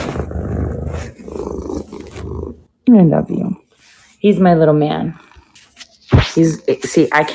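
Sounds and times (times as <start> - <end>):
old male cat purring: 0.0 - 2.7
speech: 2.9 - 3.6, 4.2 - 5.2, 6.4 - 7.3.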